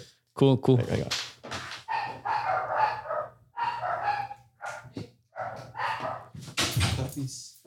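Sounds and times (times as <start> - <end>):
speech: 0.4 - 1.2
puppies barking and yipping: 1.8 - 6.4.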